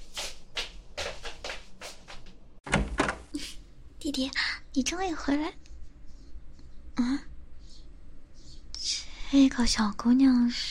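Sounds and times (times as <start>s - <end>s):
shuffling footsteps hurrying across the floor: 0.0s - 2.5s
door being pulled open with a soft rattling rush: 2.7s - 3.3s
speech: 4.1s - 5.6s, 7.0s - 7.3s, 9.3s - 10.7s.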